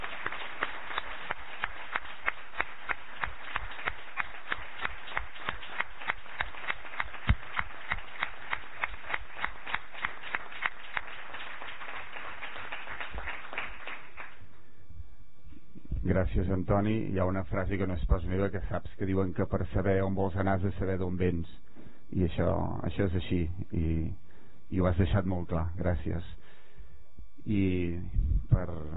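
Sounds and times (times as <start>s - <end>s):
audience clapping steadily: 0.0s - 14.4s
speech: 16.2s - 26.4s, 27.5s - 28.9s.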